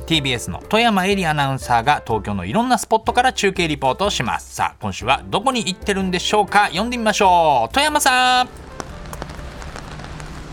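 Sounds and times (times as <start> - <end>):
speech: 0.1 - 8.7
steady hiss of heavy falling rain: 7.9 - 10.5
raindrops pattering on a vinyl umbrella in heavy rain in Tokyo: 8.3 - 10.5.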